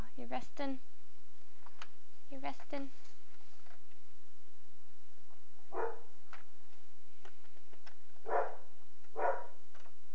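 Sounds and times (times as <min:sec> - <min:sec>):
speech: 0:00.4 - 0:00.9
dog barking quietly: 0:05.7 - 0:06.1, 0:08.2 - 0:09.6.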